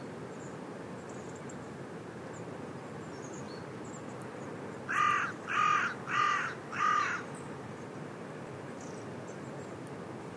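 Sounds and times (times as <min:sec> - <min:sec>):
faint background hiss: 0:00.0 - 0:10.3
carrion crow Corvus corone giving hoarse rasping caws: 0:04.9 - 0:07.3.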